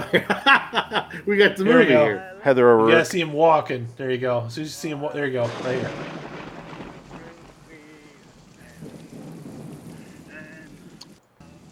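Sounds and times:
laughter: 0.0 - 2.2
speech: 0.1 - 6.2
deep rumble: 5.4 - 11.2
steady heavy rain hissing: 5.4 - 11.7.

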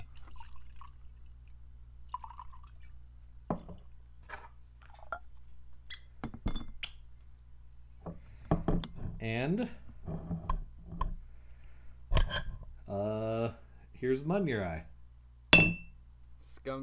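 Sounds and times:
drinks being poured into glasses: 0.0 - 1.2, 2.1 - 2.9
steady low electrical hum: 0.0 - 16.8
speech: 9.2 - 9.8, 14.2 - 14.9, 16.6 - 16.8
sharp glassy clinks: 15.6 - 15.9.

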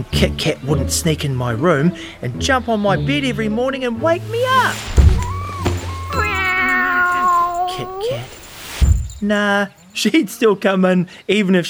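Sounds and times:
speech: 0.0 - 5.1, 7.8 - 8.4, 9.2 - 11.6
cat meowing insistently: 4.9 - 8.9.

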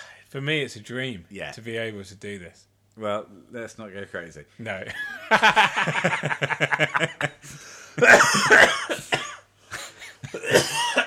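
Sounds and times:
speech: 0.3 - 9.2
laughter: 4.8 - 8.7
person coughing: 8.0 - 11.0.

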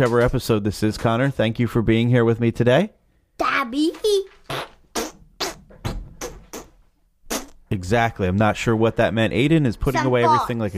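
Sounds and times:
speech: 0.0 - 4.2, 7.8 - 10.7
fart noises blown by mouth: 4.4 - 7.7.

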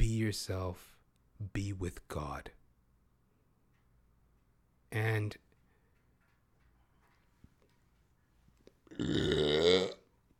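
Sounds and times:
speech: 0.3 - 2.6, 4.9 - 5.4, 8.9 - 10.0
person burping loudly: 8.9 - 10.1.

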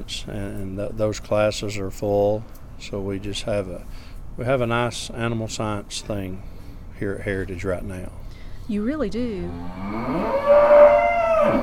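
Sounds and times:
speech: 0.1 - 11.6
cow mooing for feeding time: 9.5 - 11.6.

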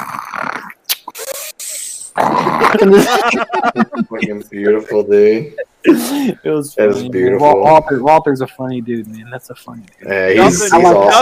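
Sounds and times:
man imitating snoring with his voice: 2.2 - 2.8
laughter: 2.4 - 7.3, 10.4 - 11.2
speech: 2.7 - 11.2.

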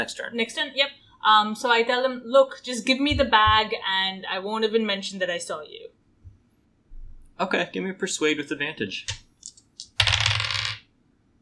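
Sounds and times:
speech: 0.0 - 6.0, 7.4 - 9.2
dice tumbling across a table: 9.1 - 10.9.

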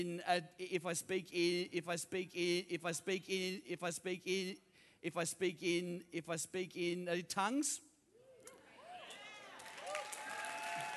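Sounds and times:
speech: 0.0 - 7.9
audience clapping: 9.2 - 10.9.

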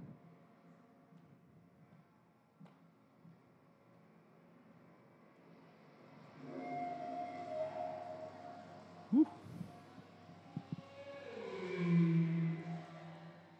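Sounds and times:
whale calls: 6.5 - 9.6, 11.0 - 13.1.

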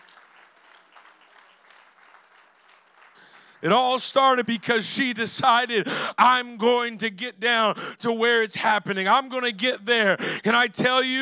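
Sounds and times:
congregation clapping: 0.0 - 6.4
speech: 3.6 - 11.1.

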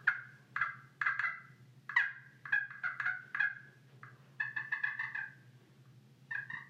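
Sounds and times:
turkey purrs made on a slate call with a plastic striker: 0.0 - 5.5, 6.3 - 6.6.

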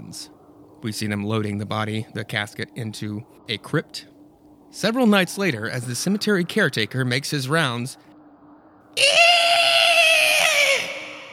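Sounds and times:
speech: 0.1 - 4.1, 4.7 - 8.1, 9.0 - 9.2
high-pitched scream from inside a crypt in a cemetery family vault: 9.0 - 11.3.

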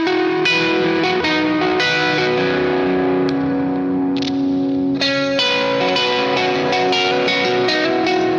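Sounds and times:
electric guitar with humbucker tone and drive effect playing driven chords: 0.0 - 8.3.

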